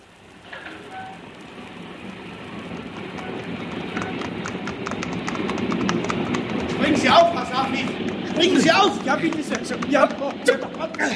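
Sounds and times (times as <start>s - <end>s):
express train pulling out of a station: 0.4s - 11.1s
high squeal: 0.6s - 1.3s, 3.1s - 4.3s
speech: 7.6s - 11.1s.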